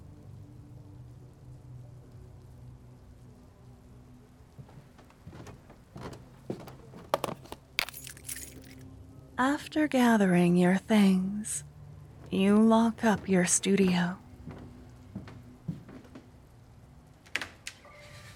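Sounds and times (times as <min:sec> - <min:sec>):
steady rain pattering on a hard surface: 0:00.0 - 0:04.8
low hum: 0:00.0 - 0:17.6
speech: 0:09.4 - 0:11.7, 0:12.3 - 0:14.2.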